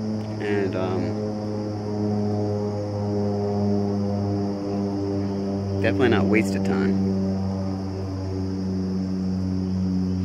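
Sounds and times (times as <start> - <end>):
airplanes flying overhead: 0.0 - 10.2
speech: 5.8 - 7.3.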